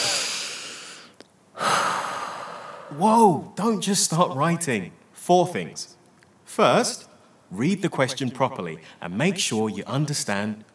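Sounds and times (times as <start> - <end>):
deep breathing: 0.0 - 3.0
speech: 2.9 - 10.7.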